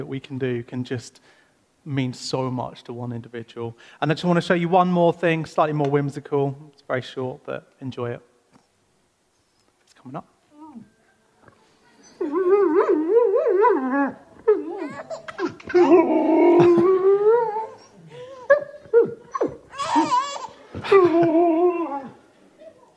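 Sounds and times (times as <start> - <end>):
speech: 0.0 - 8.3, 10.0 - 10.9, 15.1 - 16.8
dog whimpering and howling: 12.0 - 22.9
baby giggling and babbling: 12.1 - 21.4.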